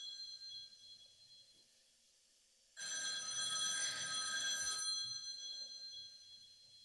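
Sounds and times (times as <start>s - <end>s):
old-style telephone bell ringing: 2.8s - 6.5s.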